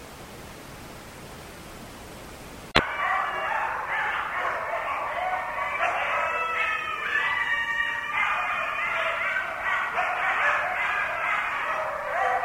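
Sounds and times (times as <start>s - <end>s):
several coyotes howling and yipping: 2.8s - 12.4s.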